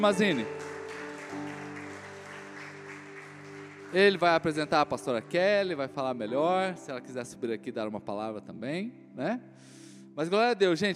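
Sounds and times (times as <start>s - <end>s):
speech: 0.0s - 0.7s, 3.9s - 10.9s
church audience applause: 0.0s - 5.6s
sustained keyboard chords: 0.0s - 9.5s.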